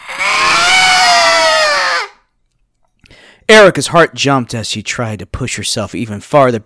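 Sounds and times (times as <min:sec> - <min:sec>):
loud high-pitched scream in a hallway: 0:00.0 - 0:02.3
speech: 0:03.5 - 0:06.6.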